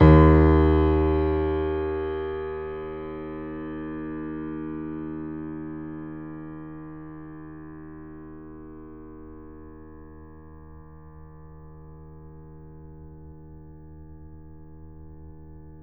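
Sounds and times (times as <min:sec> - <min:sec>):
grand piano note D sharp one played forte: 0:00.0 - 0:03.6.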